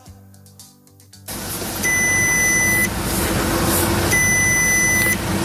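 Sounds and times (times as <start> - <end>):
car dashboard warning-light alert beeping: 1.8 - 3.0, 4.1 - 5.3.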